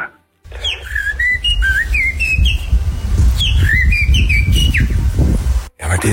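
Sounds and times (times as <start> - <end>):
person whistling an imitation of a blackbird song: 0.6 - 5.1.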